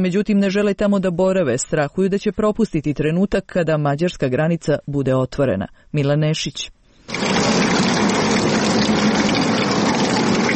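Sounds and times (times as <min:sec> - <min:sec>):
speech: 0:00.0 - 0:07.8
water pouring from an outdoor public tap: 0:07.0 - 0:10.5.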